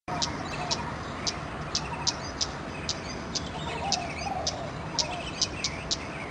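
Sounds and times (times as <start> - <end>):
male Scarlet-backed Flowerpecker calls: 0.1 - 6.3.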